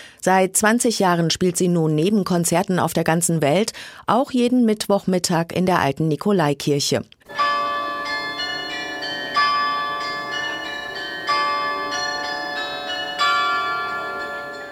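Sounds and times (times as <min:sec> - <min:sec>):
speech: 0:00.2 - 0:07.4
carillon bells playing a slow melody from a church tower: 0:07.3 - 0:14.7.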